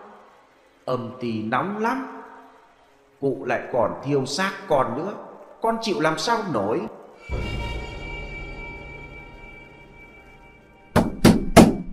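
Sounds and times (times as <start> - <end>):
speech: 0.9 - 2.2, 3.2 - 7.5
rapid loud knocks on a gate door: 11.0 - 11.9.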